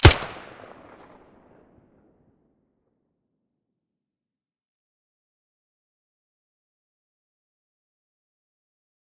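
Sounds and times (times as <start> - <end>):
silenced Five-seven pistol shot: 0.0 - 1.0.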